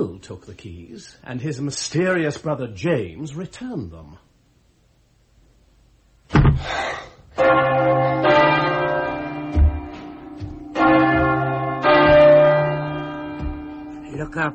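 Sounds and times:
speech: 0.0 - 4.3, 6.3 - 7.6, 14.2 - 14.5
church bells ringing: 7.4 - 14.5.

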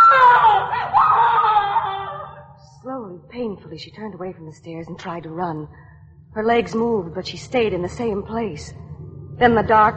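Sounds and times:
woman screaming: 0.0 - 2.5
speech: 3.7 - 9.9.

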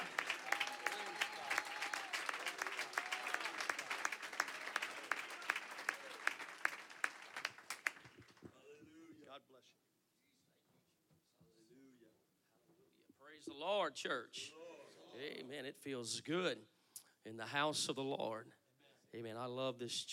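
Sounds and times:
crowd clapping and applauding: 0.0 - 8.5
speech: 13.5 - 14.6, 15.2 - 20.1.

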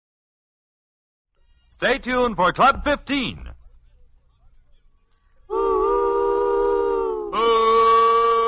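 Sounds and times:
speech: 1.8 - 3.5
train whistle blowing a long loud blast: 5.5 - 8.4.

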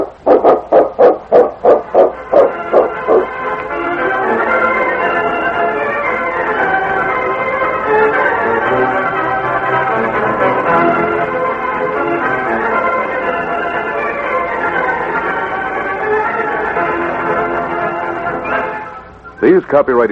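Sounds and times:
dog barking: 0.0 - 3.3
continuous wash of broad noise: 0.0 - 20.1
speech: 19.8 - 20.1.

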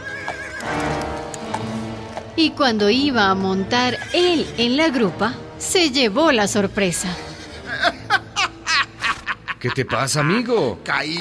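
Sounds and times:
horse neighing: 0.0 - 1.2, 3.4 - 5.0
hooves clip-clopping: 0.0 - 2.6
speech: 2.4 - 7.3, 9.6 - 11.1
laughter: 7.3 - 10.7.

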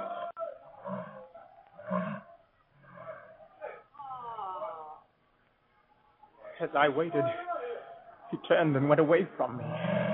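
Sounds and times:
lion roaring in a stadium: 0.8 - 3.4, 9.5 - 10.1
speech: 6.6 - 7.5, 8.3 - 9.9.

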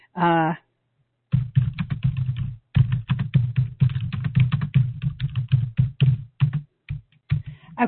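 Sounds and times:
person typing a message on a computer keyboard: 1.3 - 7.6.

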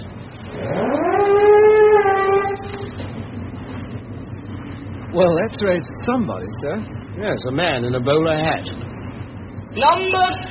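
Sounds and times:
siren wailing: 0.4 - 3.2
speech: 5.2 - 8.9, 9.8 - 10.4.

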